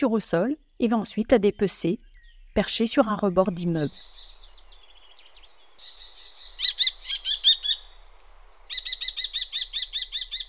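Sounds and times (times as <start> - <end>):
speech: 0.0 - 4.3
small pigeon-sized falcon giving shrill rapid calls: 3.5 - 10.4.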